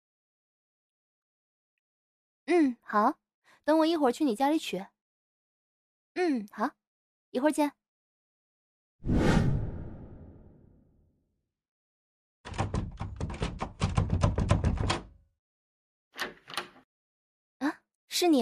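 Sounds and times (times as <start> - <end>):
speech: 2.5 - 4.9, 6.2 - 7.8, 9.0 - 9.3, 18.2 - 18.4
soft whoosh: 9.1 - 10.5
key rattling and jiggling in a lock failing to unlock a door: 12.5 - 15.1, 16.2 - 16.8.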